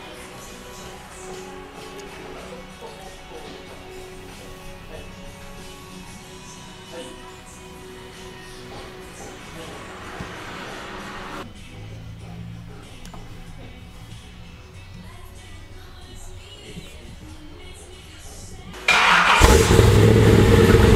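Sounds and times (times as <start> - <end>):
car engine through Flowmaster Hush muffler: 18.8 - 20.9.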